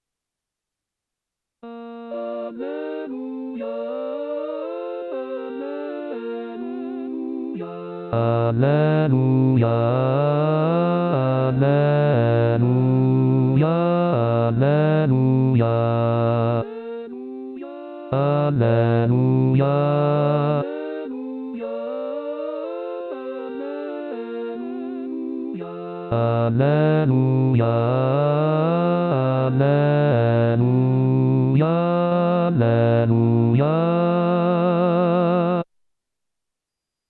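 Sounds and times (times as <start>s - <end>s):
bass voices singing an alleluia: 1.7s - 35.6s.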